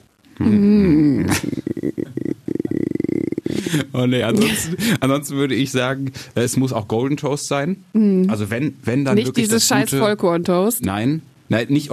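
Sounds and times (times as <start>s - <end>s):
person imitating a growling dog: 0.4s - 3.8s
speech: 3.7s - 11.9s.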